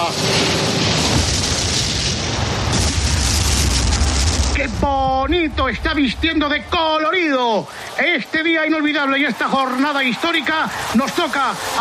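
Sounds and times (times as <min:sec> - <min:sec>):
Valencian fireworks booming at a celebration in Spain: 0:00.0 - 0:07.8
speech: 0:04.6 - 0:11.8.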